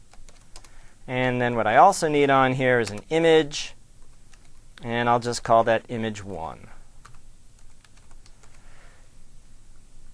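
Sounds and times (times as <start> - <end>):
soft hiss: 0.0 - 10.1
faint typing on a computer keyboard: 0.1 - 0.8, 4.3 - 4.6, 7.0 - 8.6
speech: 1.1 - 3.8, 4.8 - 6.8.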